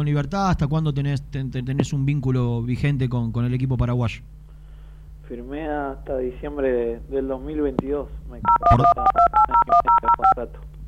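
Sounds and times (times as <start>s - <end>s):
speech: 0.0s - 4.4s, 5.3s - 10.8s
faint hum: 0.0s - 10.8s
phone keypad dual-tone beeps pressed by a caller's cheek: 8.4s - 10.4s.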